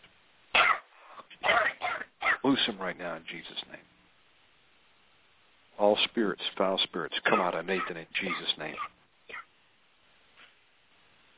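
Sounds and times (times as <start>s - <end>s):
deep forceful coughing: 0.6s - 2.4s, 7.3s - 9.4s
faint breath: 0.9s - 1.4s
speech: 2.4s - 3.8s, 5.8s - 9.0s.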